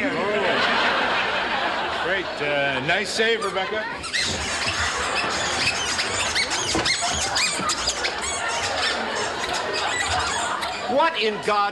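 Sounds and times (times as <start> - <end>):
laughter: 0.0 - 11.7
speech: 2.4 - 4.6, 10.9 - 11.7
stampede of many squeaky shoes running: 3.9 - 11.0.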